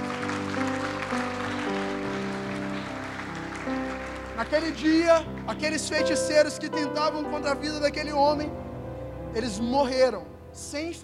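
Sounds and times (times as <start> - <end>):
church audience applauding: 0.0 - 6.6
sustained droning keyboard-like music: 0.0 - 11.0
speech: 4.4 - 8.6, 9.3 - 11.0.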